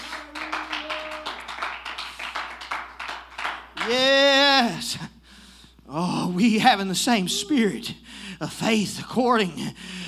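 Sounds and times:
audience clapping hands in a steady rhythmic beat: 0.0 - 4.1
speech: 3.9 - 5.1, 5.9 - 10.0.

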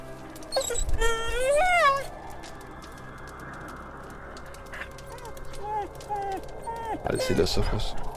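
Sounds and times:
frightened dog howling in terror: 0.5 - 2.5, 4.4 - 8.1
speech: 7.1 - 8.1.

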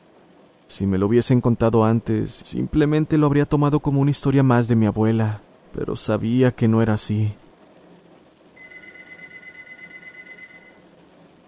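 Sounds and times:
steady hiss: 0.0 - 11.4
speech: 0.8 - 7.4
telephone ringing with bright electronic tone: 8.6 - 10.8.

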